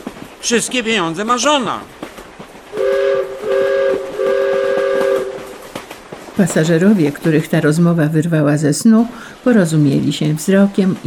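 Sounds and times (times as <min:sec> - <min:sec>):
express train rumbling: 0:00.0 - 0:11.0
speech: 0:00.4 - 0:02.0, 0:06.4 - 0:11.0
express train horn blasts: 0:02.7 - 0:05.8.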